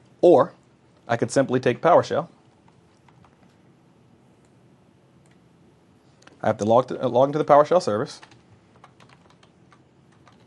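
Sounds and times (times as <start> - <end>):
speech: 0.2 - 2.4, 6.4 - 8.3
typing on a computer keyboard: 2.7 - 3.6, 8.2 - 10.4.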